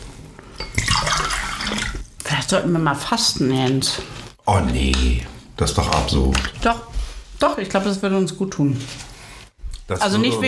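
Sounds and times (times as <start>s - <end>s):
water pouring into a glass: 0.6s - 2.0s
speech: 2.4s - 9.1s, 9.9s - 10.4s.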